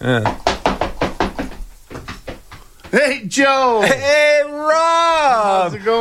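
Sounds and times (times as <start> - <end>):
speech: 0.0 - 0.4, 2.9 - 6.0
knocking on a door: 0.2 - 3.0.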